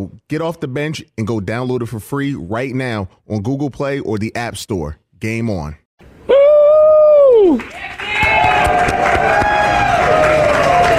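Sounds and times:
speech: 0.0 - 5.8, 7.4 - 10.4
large crowd cheering and roaring: 6.3 - 10.9
scattered claps: 7.2 - 10.9.

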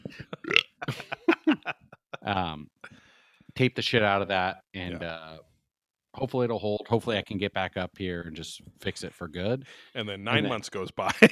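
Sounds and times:
person burping: 0.0 - 1.3
laughter: 0.0 - 2.6, 10.3 - 11.3
loud rumbling belch: 0.4 - 0.8
speech: 3.6 - 5.5, 6.2 - 11.3.

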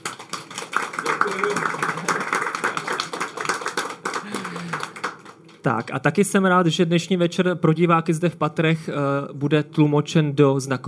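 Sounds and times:
crowd applauding: 0.0 - 6.0
speech: 5.6 - 10.8.

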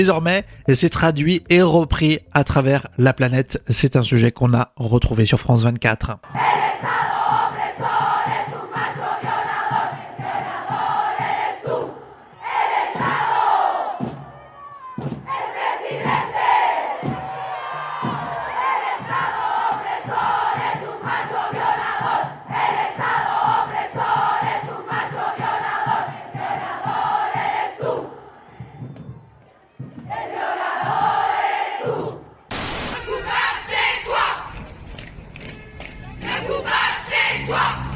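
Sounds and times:
speech: 0.0 - 7.2
large crowd of women chanting in unison at an outdoor protest: 6.2 - 34.5, 36.2 - 37.9.

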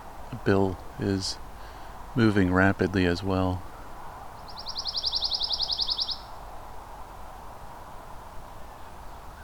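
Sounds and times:
steady hiss of outdoor noise: 0.0 - 9.4
speech: 0.3 - 1.4, 2.1 - 3.7
male songbird singing a rapid high trill: 4.4 - 6.4.

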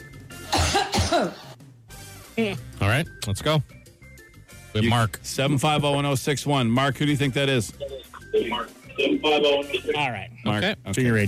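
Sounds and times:
person coughing raspily: 0.4 - 1.5
speech: 1.2 - 1.5, 2.4 - 3.8, 4.7 - 11.2.

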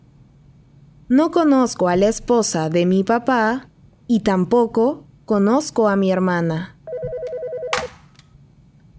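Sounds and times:
speech: 1.1 - 6.7
telephone ringing with warbling trill: 6.9 - 7.9
telephone receiver picked up with a clunk: 7.7 - 8.2.

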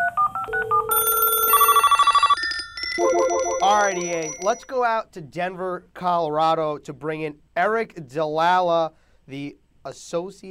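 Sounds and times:
telephone dialing tones: 0.0 - 4.6
steady electronic phone ring: 0.0 - 4.7
speech: 3.0 - 10.4.

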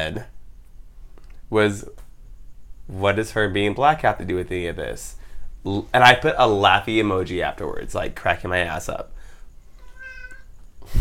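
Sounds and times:
speech: 0.0 - 0.3, 1.5 - 2.0, 2.9 - 9.2
cat meowing: 9.8 - 10.6.

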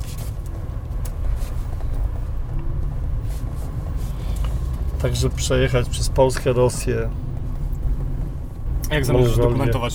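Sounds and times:
car in motion heard from inside the cabin: 0.0 - 9.9
faint clicks and ticks: 0.2 - 9.9
speech: 5.0 - 7.3, 8.9 - 9.9.

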